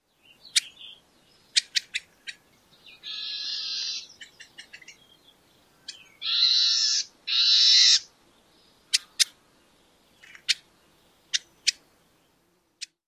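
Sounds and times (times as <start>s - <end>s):
warbling vireo vit and eeah calls: 0.2s - 8.1s, 8.8s - 9.4s, 10.2s - 11.8s.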